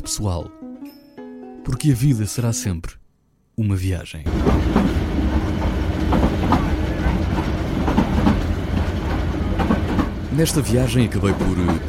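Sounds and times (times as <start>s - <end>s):
speech: 0.1s - 1.0s, 1.6s - 3.0s, 3.6s - 5.0s, 10.4s - 11.8s
train clattering along the rails heard from inside the carriage: 4.3s - 11.8s.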